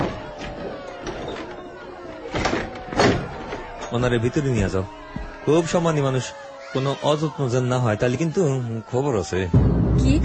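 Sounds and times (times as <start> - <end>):
door being opened: 0.0 - 3.9
speech: 3.9 - 10.2.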